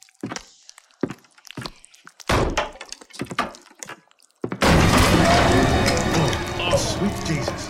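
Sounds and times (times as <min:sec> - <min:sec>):
door crashing open: 0:04.6 - 0:06.6
sustained roar of noise: 0:04.6 - 0:07.6.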